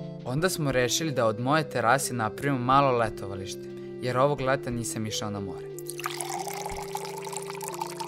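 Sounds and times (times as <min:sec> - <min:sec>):
speech: 0:00.3 - 0:06.1
water poured from a small bottle into a blue bowl: 0:05.8 - 0:08.0.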